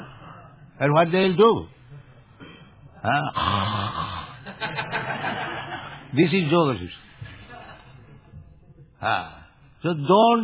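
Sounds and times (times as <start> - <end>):
speech: 0.8 - 1.8, 3.0 - 3.8, 6.1 - 7.1, 9.0 - 10.4
man's voice imitating people snoring while meditating: 3.0 - 4.4
laughter: 4.3 - 6.5, 7.2 - 8.2.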